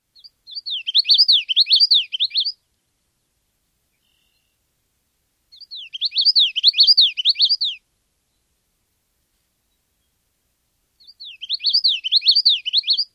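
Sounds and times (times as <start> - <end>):
Common Yellowthroat singing: 0.1 - 2.6, 4.0 - 4.6, 5.5 - 8.5, 11.0 - 13.1.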